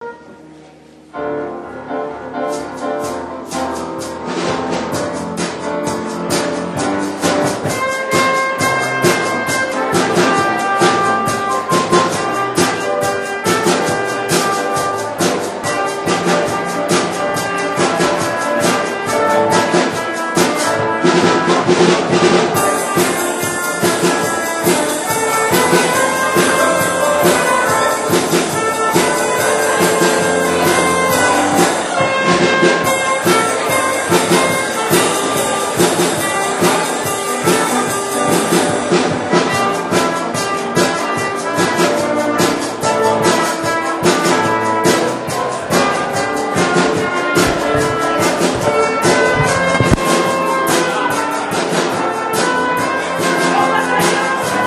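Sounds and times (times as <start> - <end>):
piano: 0.0 - 54.6
trumpet: 0.0 - 54.6
drums: 0.1 - 54.6
laughter: 53.1 - 54.6.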